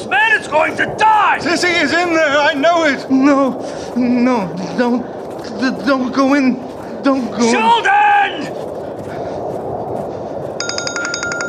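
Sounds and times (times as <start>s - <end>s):
speech: 0.5s - 8.6s
phone ringing with electronic pulses: 10.6s - 11.4s.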